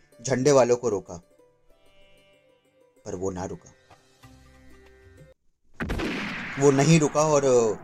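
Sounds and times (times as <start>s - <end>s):
quiet sustained tonal music: 0.0s - 5.4s
speech: 0.2s - 1.3s, 3.1s - 3.8s, 6.6s - 7.8s
loud booming gunshot fired by soldiers: 5.8s - 7.8s.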